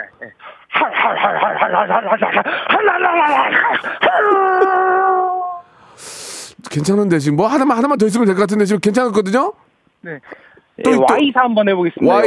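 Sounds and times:
laughter: 0.8s - 5.0s
speech: 1.0s - 5.2s, 6.0s - 12.2s
voice imitating an American motorcycle engine idling and revving: 10.9s - 11.2s.

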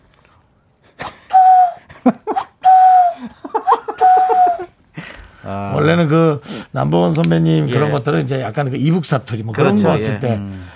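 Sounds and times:
whistled imitation of a cuckoo call: 1.3s - 4.7s
people laughing: 3.2s - 4.7s
speech: 5.5s - 10.7s.

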